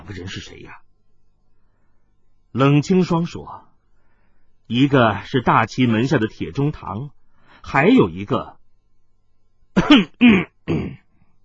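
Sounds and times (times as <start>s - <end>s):
speech: 0.1s - 0.8s, 2.5s - 3.7s, 4.7s - 8.6s, 9.8s - 11.0s
dry cough: 9.8s - 11.1s.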